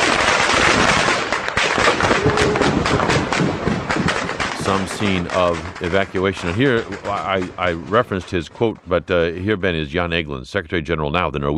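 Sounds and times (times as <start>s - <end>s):
gunfire bursts during civilian evacuation: 0.0s - 8.1s
laughter: 2.0s - 3.1s, 4.6s - 11.5s
speech: 4.7s - 11.5s.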